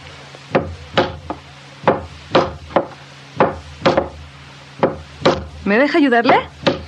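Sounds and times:
hammer driving nails into wooden boards of a boat being repaired: 0:00.5 - 0:04.2, 0:04.8 - 0:05.5, 0:06.3 - 0:06.8
speech: 0:05.7 - 0:06.6.

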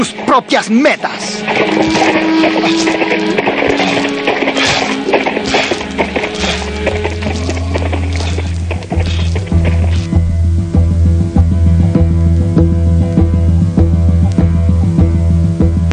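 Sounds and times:
speech: 0:00.0 - 0:03.7
low sustained musical drone: 0:00.0 - 0:15.9
hoofbeats of a galloping horse: 0:01.3 - 0:10.5.

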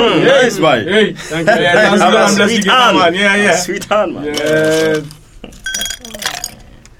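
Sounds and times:
speech: 0:00.0 - 0:05.8
glasses clinking while lemonade is served: 0:05.5 - 0:06.9.

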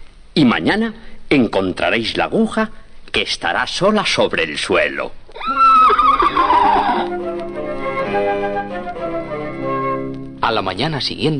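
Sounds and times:
speech: 0:00.4 - 0:05.6, 0:10.5 - 0:11.3
horse whinnying: 0:05.3 - 0:07.4
steady lingering tonal backdrop: 0:06.8 - 0:11.1.

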